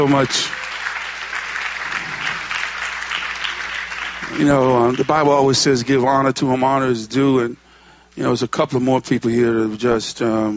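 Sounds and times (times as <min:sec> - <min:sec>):
speech: 0:00.0 - 0:00.6, 0:04.3 - 0:07.6, 0:08.2 - 0:10.5
audience clapping hands: 0:00.0 - 0:06.0.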